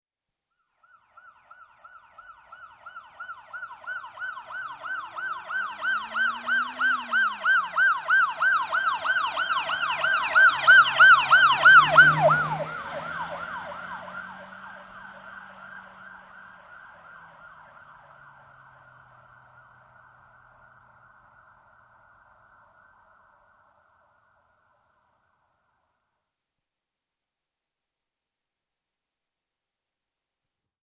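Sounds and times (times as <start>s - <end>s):
police car yelp siren: 0.8s - 25.3s
police car passing from left to right: 0.8s - 25.4s.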